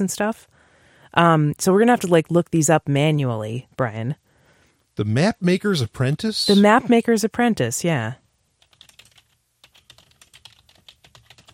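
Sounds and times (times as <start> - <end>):
speech: 0.0 - 0.5, 1.1 - 4.2, 5.0 - 8.2
typing on a computer keyboard: 8.6 - 11.5.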